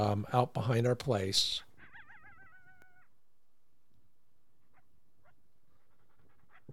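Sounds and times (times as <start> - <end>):
speech: 0.0 - 1.7
faint coyote yips: 1.8 - 3.1, 4.6 - 6.7
coyote howling at a dog behind a home: 1.8 - 3.2, 4.6 - 6.7.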